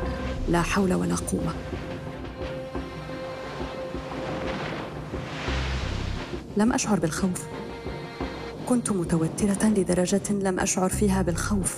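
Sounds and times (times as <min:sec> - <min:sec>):
speech: 0:00.5 - 0:01.8, 0:06.6 - 0:07.6, 0:08.7 - 0:11.7
rough high sea waves slapping against the wooden hull of a stopped yacht: 0:01.4 - 0:07.3, 0:08.3 - 0:10.9.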